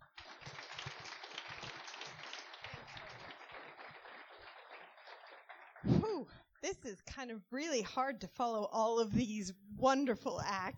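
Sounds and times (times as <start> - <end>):
audience applause: 0.0 - 5.9
speech: 6.1 - 10.7.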